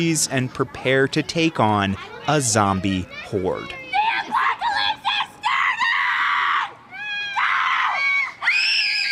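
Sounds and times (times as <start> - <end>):
speech: 0.0 - 3.8
woman screaming shrilly: 4.1 - 9.1.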